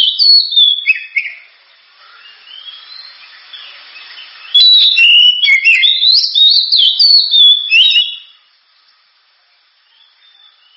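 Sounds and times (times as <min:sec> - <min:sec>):
Oriental magpie-robin singing: 0:00.0 - 0:01.5, 0:02.2 - 0:08.4.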